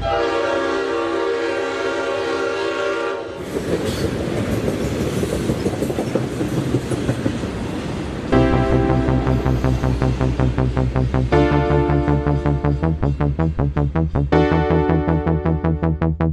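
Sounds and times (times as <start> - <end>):
loud train horn blaring in a steady chord: 0.0 - 3.4, 8.4 - 16.2
heavy rumble and rattle of train cars rushing past: 0.0 - 15.9.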